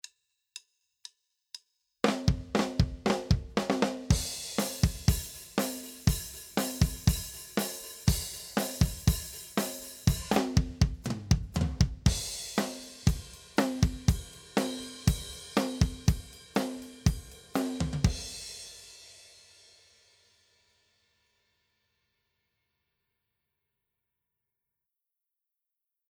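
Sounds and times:
drum beat processed with a microphone: 0:02.0 - 0:18.9.

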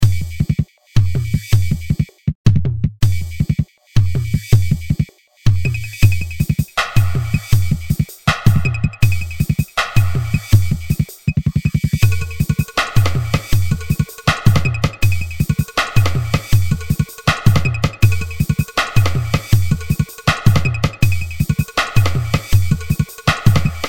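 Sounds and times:
drum step beat: 0:00.0 - 0:23.8.

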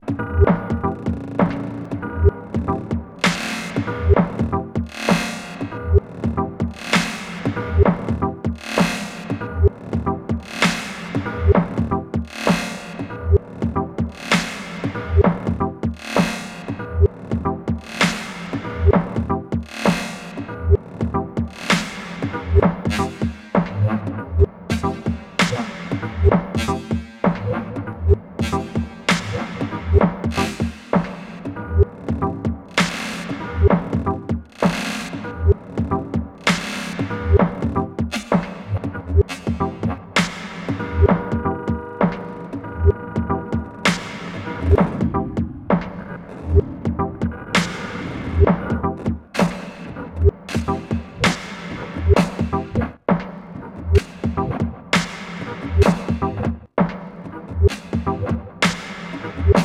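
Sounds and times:
granular resampled loop with modulated grain speed: 0:00.0 - 0:59.6.

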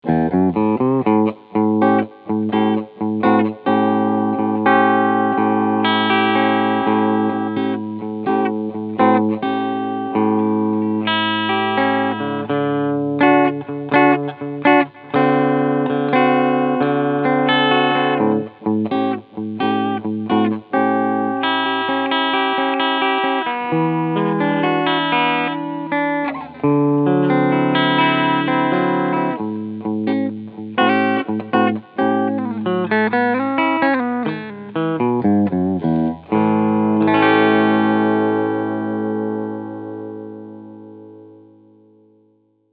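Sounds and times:
Epiphone Lucille electric guitar played clean through humbucker pickup: 0:00.0 - 0:42.6.

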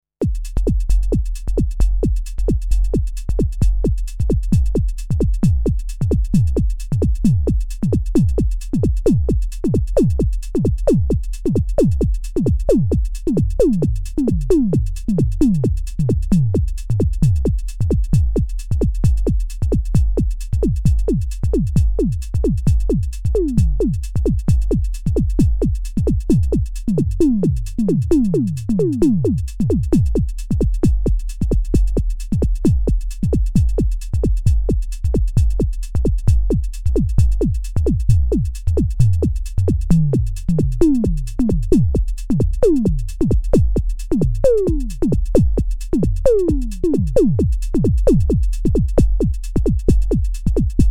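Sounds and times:
drum machine kick and tom swing: 0:00.2 - 0:50.8.

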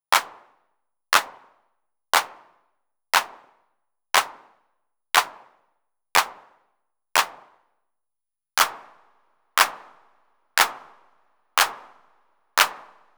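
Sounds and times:
drum machine handclap: 0:00.1 - 0:00.5, 0:01.2 - 0:01.5, 0:02.2 - 0:02.4, 0:03.2 - 0:03.4, 0:04.2 - 0:04.4, 0:05.2 - 0:05.4, 0:07.2 - 0:07.4, 0:08.6 - 0:08.9, 0:09.6 - 0:10.0, 0:10.6 - 0:10.9, 0:11.6 - 0:11.9, 0:12.6 - 0:13.0.

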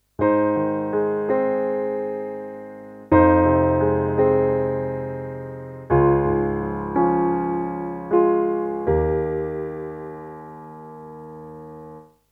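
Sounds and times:
Alesis Prestige Dark Piano: 0:00.2 - 0:12.2.

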